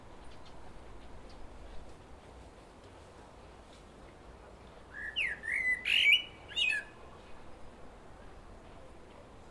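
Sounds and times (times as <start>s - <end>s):
common blackbird short song phrase, Turdus merula: 4.9s - 7.0s.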